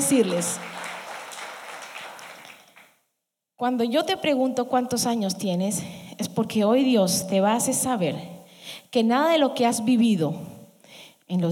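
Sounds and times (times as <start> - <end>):
speech: 0.0 - 0.8, 3.6 - 10.6, 11.3 - 11.4
church audience applauding in welcome: 0.0 - 3.0.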